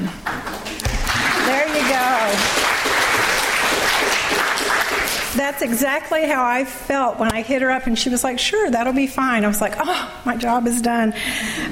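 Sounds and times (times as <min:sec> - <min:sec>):
audience applause at an evening talk with a guest speaker: 0:00.0 - 0:05.4
speech: 0:01.8 - 0:02.6, 0:05.4 - 0:11.7.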